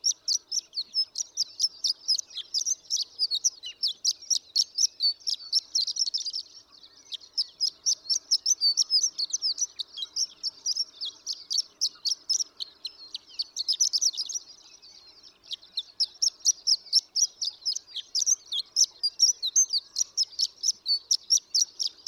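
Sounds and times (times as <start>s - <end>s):
horned lark singing: 0.0s - 22.0s.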